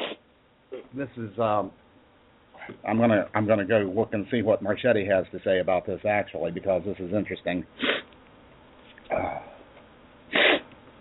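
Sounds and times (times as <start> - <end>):
person sniffling: 0.0 - 0.2, 7.8 - 8.1, 10.3 - 10.7
speech: 1.0 - 1.8, 2.7 - 7.9.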